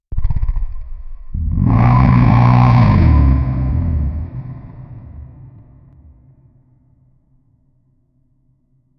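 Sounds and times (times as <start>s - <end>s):
powerful deep jaguar roar: 1.4s - 6.2s.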